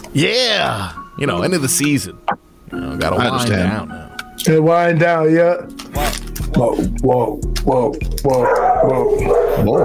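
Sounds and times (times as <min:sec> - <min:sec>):
speech: 0:00.2 - 0:09.8
dog barking with howling whining tones: 0:08.4 - 0:09.8.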